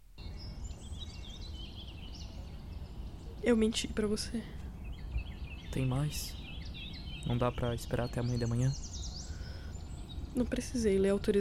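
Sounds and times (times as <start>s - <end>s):
birdsong chorus of chirps and warbling tweets: 0.0s - 11.3s
soft constant hiss: 0.0s - 11.3s
speech: 3.4s - 4.6s, 5.8s - 6.4s, 7.3s - 8.9s, 10.4s - 11.3s.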